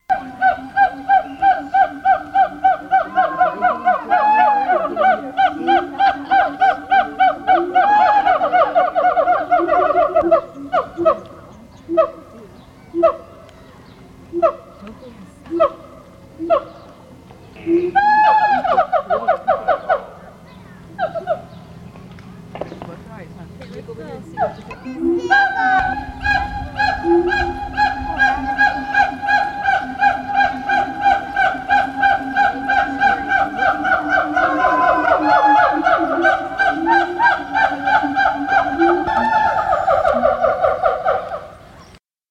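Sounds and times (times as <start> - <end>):
howler monkeys calling: 0.0 - 42.0
laughter: 0.2 - 11.2, 23.0 - 41.2.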